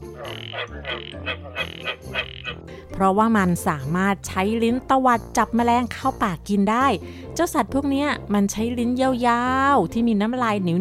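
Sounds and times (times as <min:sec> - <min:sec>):
frogs croaking in a chorus: 0:00.0 - 0:02.7
speech: 0:00.2 - 0:10.7.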